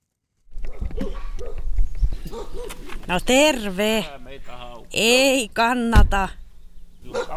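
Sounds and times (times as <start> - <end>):
Karelian Bear Dog barking at arrivals at a boatbuilder's workshop in Sulkava Finland: 0.6 - 1.6, 2.3 - 2.8, 7.1 - 7.3
speech: 3.1 - 4.2, 5.0 - 6.4.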